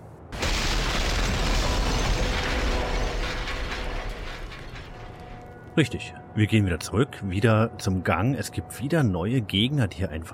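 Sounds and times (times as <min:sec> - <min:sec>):
trailer rolling and crashing into a drawbridge in a video game: 0:00.3 - 0:06.0
speech: 0:05.8 - 0:10.3.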